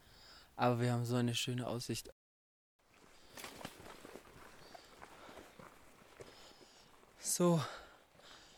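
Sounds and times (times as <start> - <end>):
speech: 0.6 - 2.2, 7.4 - 7.8
footsteps of people walking along a flat valley trail: 2.8 - 8.5.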